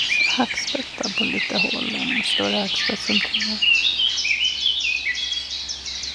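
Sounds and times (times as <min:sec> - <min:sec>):
Eurasian blackcap singing: 0:00.0 - 0:06.1
speech: 0:00.4 - 0:04.0.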